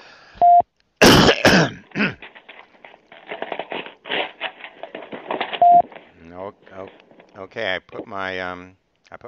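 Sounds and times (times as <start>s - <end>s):
person coughing: 1.0s - 2.3s
rough throat clearing: 1.0s - 2.3s
short electronic beeps: 5.6s - 5.9s
speech: 7.6s - 9.2s.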